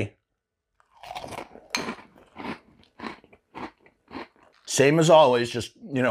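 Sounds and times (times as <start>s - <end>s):
person biting and chewing fruity chocolate cereal: 0.8s - 4.8s
speech: 4.7s - 6.0s.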